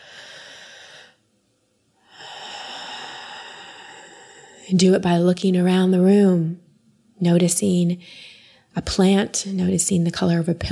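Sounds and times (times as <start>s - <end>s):
deep breath in and out: 0.0s - 1.2s, 2.0s - 4.7s, 8.0s - 8.7s
speech: 4.7s - 6.6s, 7.2s - 10.6s.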